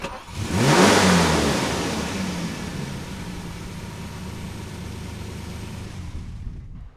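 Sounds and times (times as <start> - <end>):
engine starting: 0.0 - 1.4.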